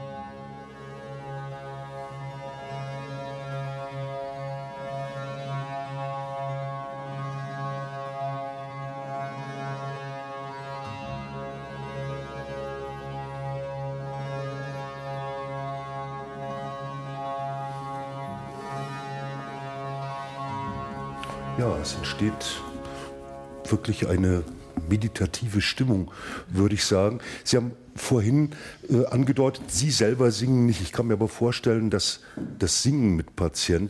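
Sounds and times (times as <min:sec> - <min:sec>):
monochord with many strings tuned to the same note droning with overtones: 0:05.6 - 0:26.0
speech: 0:21.6 - 0:22.7, 0:23.7 - 0:33.8.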